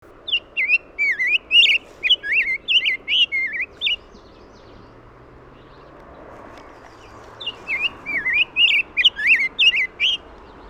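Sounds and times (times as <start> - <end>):
Rose-breasted Grosbeak Pheucticus ludovicianus calling: 0.2 - 4.9, 6.6 - 10.6.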